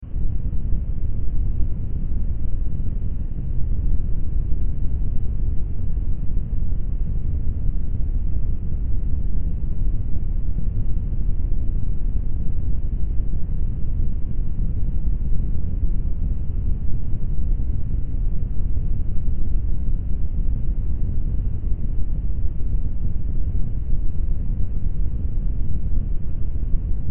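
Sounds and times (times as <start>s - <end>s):
low brown noise: 0.0s - 27.0s.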